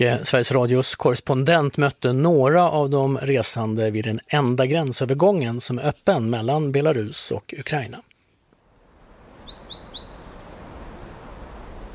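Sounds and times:
speech: 0:00.0 - 0:08.1
low steady outdoor rumble: 0:08.7 - 0:11.9
bright bird chirps with short rising whistles: 0:09.4 - 0:10.4.

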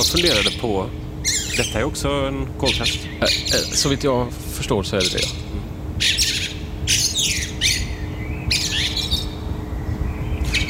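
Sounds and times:
Eurasian blackbird chattering calls: 0:00.0 - 0:01.9, 0:02.6 - 0:04.1, 0:04.9 - 0:09.4, 0:10.2 - 0:10.6
speech: 0:00.0 - 0:05.7
faint hum: 0:00.0 - 0:10.6.

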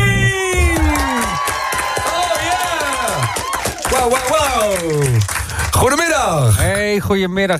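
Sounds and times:
studio audience cheering and whooping: 0:00.5 - 0:05.3
speech: 0:06.2 - 0:07.5.

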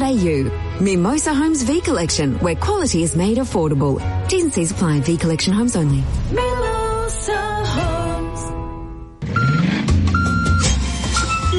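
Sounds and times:
speech: 0:00.1 - 0:07.9
delivery truck reversing beeps: 0:09.2 - 0:11.5.

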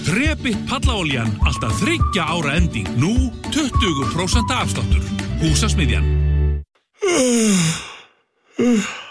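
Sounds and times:
speech: 0:00.1 - 0:06.3, 0:07.1 - 0:07.9, 0:08.6 - 0:09.0
person yawning: 0:07.0 - 0:09.0.

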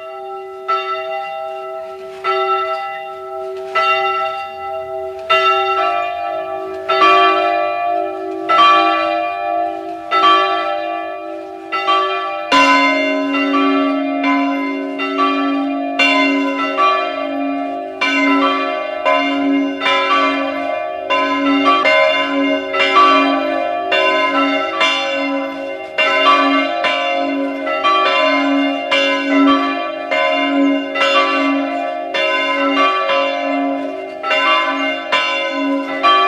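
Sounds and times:
parish church bells in Zweng in the Lungau region of Salzburg ringing at noon: 0:00.0 - 0:36.2.

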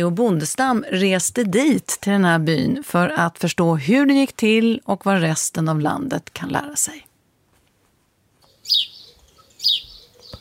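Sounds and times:
speech: 0:00.0 - 0:07.1
house sparrows chirping outdoors: 0:08.4 - 0:10.3.

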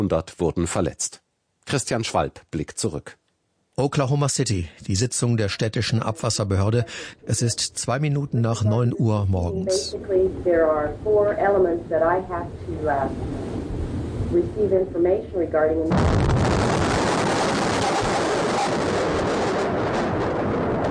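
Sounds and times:
speech: 0:00.0 - 0:03.2, 0:03.8 - 0:13.6, 0:14.3 - 0:16.6
bomb explosion: 0:15.9 - 0:20.8.

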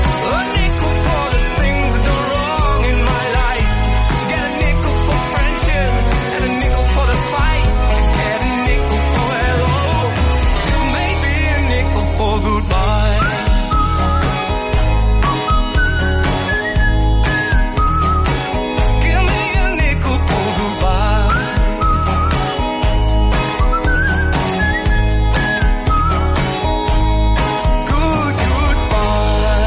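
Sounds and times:
full band with a steady drum beat: 0:00.0 - 0:29.6
whistled melody: 0:00.2 - 0:03.7, 0:12.4 - 0:29.6.

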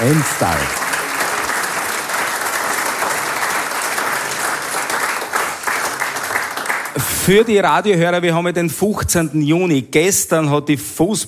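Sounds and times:
speech: 0:00.0 - 0:00.9, 0:07.2 - 0:11.2
audience applause: 0:00.0 - 0:07.6.

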